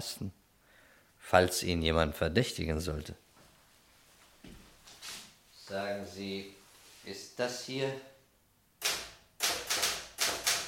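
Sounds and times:
speech: 0.0 - 0.4, 1.2 - 3.2, 5.7 - 8.1
Remington typewriter keystrokes: 8.8 - 10.6.

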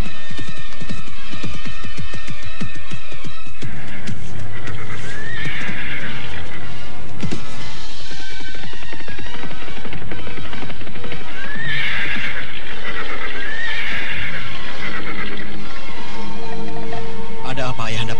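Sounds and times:
horse hooves clip-clopping during a mounted procession: 0.0 - 17.4
horse neighing as the rider halts it during a mounted procession: 3.6 - 7.1, 8.4 - 18.1.

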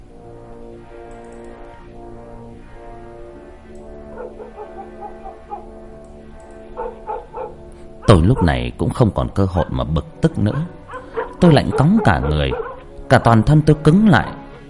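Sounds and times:
droning background with slow sweeping tones: 0.0 - 14.6
dogs barking from a house: 4.0 - 5.8, 6.6 - 8.7, 9.5 - 13.0
speech: 8.2 - 10.8, 11.4 - 14.4.

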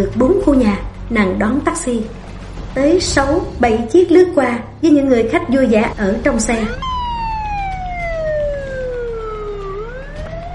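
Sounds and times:
speech: 0.0 - 2.2, 2.8 - 6.9
ambulance siren wailing: 6.6 - 10.5.

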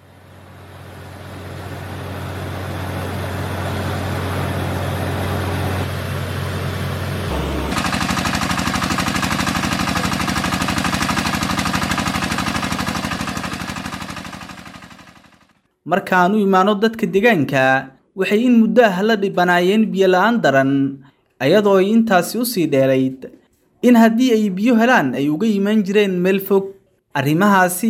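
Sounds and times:
drilling rig engine boring a water well for a village: 0.0 - 15.2
speech: 15.9 - 27.8.

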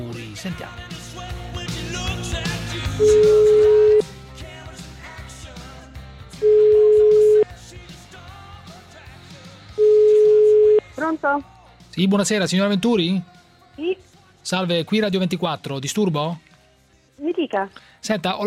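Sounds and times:
music: 0.0 - 18.4
speech: 0.4 - 1.0, 3.0 - 3.5, 11.1 - 16.5, 17.2 - 18.4
telephone ringback tones as a radio host calls someone: 3.0 - 4.0, 6.4 - 7.4, 9.8 - 10.8.

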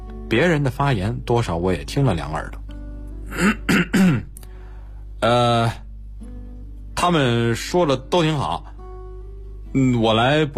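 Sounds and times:
speech: 0.3 - 2.6, 3.3 - 4.3, 5.2 - 5.8, 7.0 - 8.7, 9.7 - 10.5
person clearing throat: 3.3 - 4.4.

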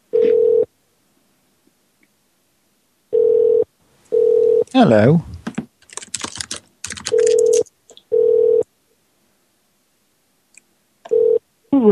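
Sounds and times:
telephone ringback tone while a caller waits on hold: 0.1 - 0.7, 3.1 - 4.7, 7.1 - 8.7, 11.1 - 11.4
speech: 4.8 - 5.3
scattered noise: 5.9 - 7.7.

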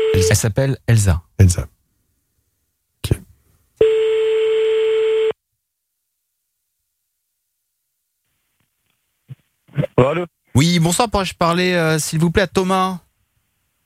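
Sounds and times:
speech: 0.2 - 1.8, 10.0 - 13.1
telephone ringback tone of an outgoing call: 3.8 - 5.3.

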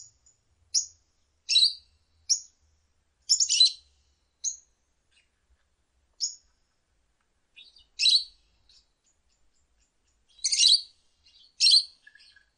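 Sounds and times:
lovebird high sharp chip calls: 1.5 - 2.5, 3.3 - 3.8, 7.6 - 12.5.

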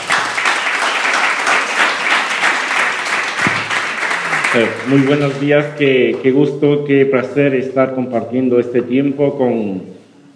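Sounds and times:
audience applause of welcome at a church gathering: 0.0 - 5.6
speech: 4.5 - 9.9.

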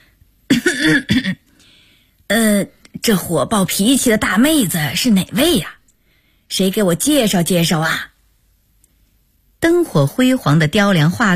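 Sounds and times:
elderly woman coughing: 0.5 - 1.5
speech: 0.7 - 1.4, 2.3 - 5.8, 6.5 - 8.1, 9.6 - 11.3.

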